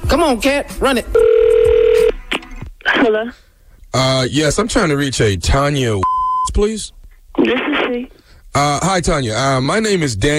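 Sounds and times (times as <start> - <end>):
speech: 0.1 - 1.4, 2.9 - 10.3
telephone ringing with a single steady electronic tone: 1.2 - 2.2.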